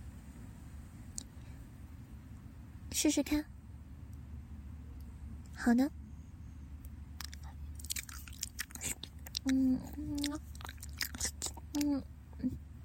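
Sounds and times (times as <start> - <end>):
low hummed vocal murmurs: 0.0 - 12.8
speech: 2.9 - 3.6, 5.6 - 6.0, 9.5 - 10.5, 11.8 - 12.6
wet ear-licking ASMR mouth sounds: 7.2 - 12.6.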